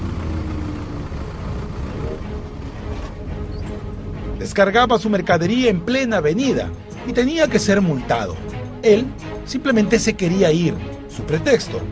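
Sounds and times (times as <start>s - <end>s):
delivery vehicle engine idling on a city avenue: 0.0s - 4.5s
speech: 4.4s - 11.9s.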